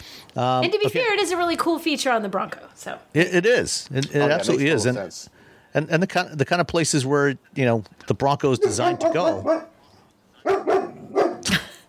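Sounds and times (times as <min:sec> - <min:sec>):
speech: 0:00.4 - 0:09.7
dog barking: 0:08.6 - 0:09.8, 0:10.4 - 0:11.5.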